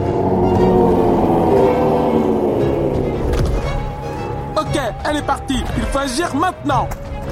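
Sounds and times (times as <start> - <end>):
monstrous green-scaled beast crying out at a cave: 0.0 - 4.6
speech: 5.1 - 7.1.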